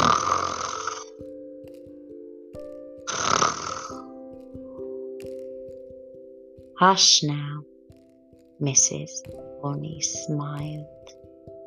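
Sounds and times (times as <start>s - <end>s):
soft snoring: 0.0s - 1.1s, 3.1s - 4.1s
speech: 6.8s - 7.7s, 8.6s - 11.0s.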